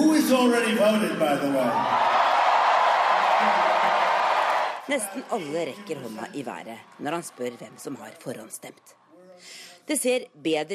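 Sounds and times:
speech: 0:00.3 - 0:02.1, 0:04.9 - 0:10.7
large crowd roaring and cheering at an election rally: 0:01.2 - 0:09.2.

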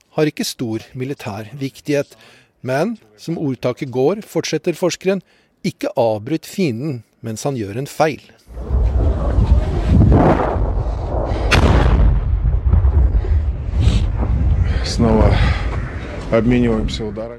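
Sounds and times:
speech: 0:00.2 - 0:08.7, 0:14.9 - 0:15.6, 0:16.3 - 0:17.3
artillery shells striking near the front line: 0:08.5 - 0:16.2.

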